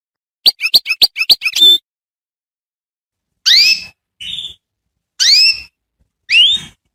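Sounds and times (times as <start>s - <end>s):
canary song for training young canaries: 0.4s - 1.8s, 3.4s - 6.9s.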